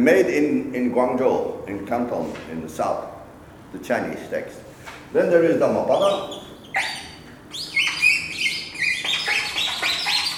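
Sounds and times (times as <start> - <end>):
speech: 0.0 - 7.0
birds chirping with tweets and short trills: 5.9 - 10.3.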